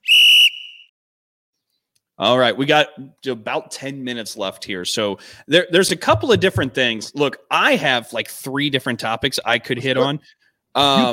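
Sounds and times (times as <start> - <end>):
high-pitched whistle blast marking quarter break: 0.0 - 0.9
speech: 2.2 - 11.1.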